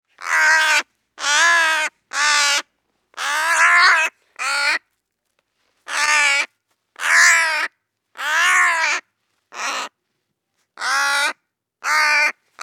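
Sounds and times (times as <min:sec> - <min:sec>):
crow giving harsh raspy caws: 0:00.2 - 0:02.6, 0:03.2 - 0:04.8, 0:05.9 - 0:09.0, 0:10.8 - 0:12.6.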